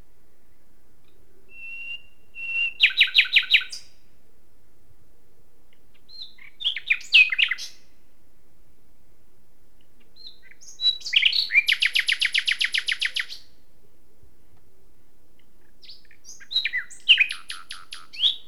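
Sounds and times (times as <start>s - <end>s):
common nightingale Luscinia megarhynchos singing: 0.3s - 4.0s, 5.7s - 7.9s, 9.8s - 13.6s, 15.4s - 18.4s.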